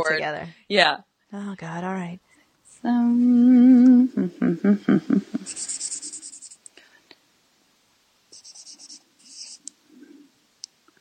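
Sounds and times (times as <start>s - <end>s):
speech: 0.0s - 2.2s, 2.8s - 5.7s
brief voiced hum: 2.8s - 6.2s
pen scratching on paper while writing: 5.4s - 6.6s, 8.4s - 9.7s.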